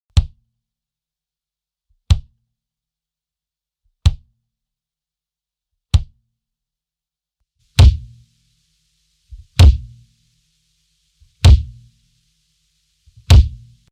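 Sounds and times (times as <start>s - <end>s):
kick bass drum of a drum kit: 0.1s - 0.4s, 2.1s - 2.4s, 4.0s - 4.3s, 6.0s - 6.2s, 7.8s - 8.2s, 9.3s - 10.0s, 11.4s - 11.9s, 13.2s - 13.8s.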